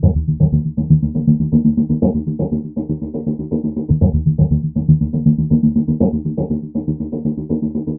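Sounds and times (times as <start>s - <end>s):
hi NRG filtered synth bassline: 0.0s - 7.5s.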